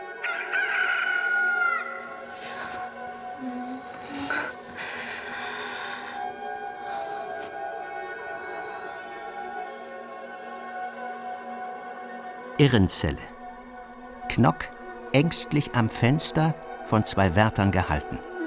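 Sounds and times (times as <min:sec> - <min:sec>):
rooster crowing at dawn: 0:00.2 - 0:02.0
speech: 0:12.6 - 0:13.3, 0:14.4 - 0:18.3.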